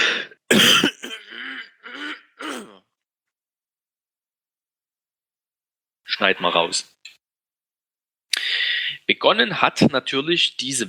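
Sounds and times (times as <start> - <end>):
person clearing throat: 0.5 - 2.9
speech: 6.2 - 7.0, 9.1 - 10.8.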